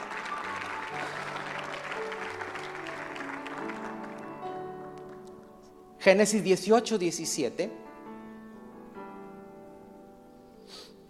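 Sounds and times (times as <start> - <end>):
audience applauding: 0.0 - 5.4
speech: 6.0 - 7.8.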